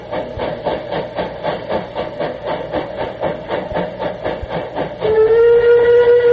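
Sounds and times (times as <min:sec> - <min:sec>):
steam locomotive chuffing through a tunnel: 0:00.0 - 0:06.3
acorn-design steam locomotive whistle: 0:05.0 - 0:06.3.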